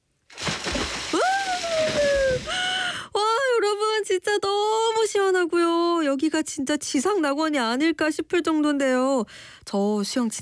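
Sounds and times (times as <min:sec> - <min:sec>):
splash of a person jumping into the Han River: 0:00.3 - 0:02.8
speech: 0:04.2 - 0:10.4.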